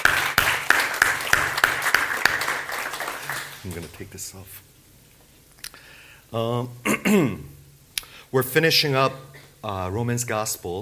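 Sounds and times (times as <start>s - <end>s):
scattered applause: 0.0s - 4.1s
crowd clapping together in a steady rhythmic beat: 0.0s - 4.2s
speech: 3.6s - 4.7s, 6.3s - 7.6s, 8.3s - 10.8s.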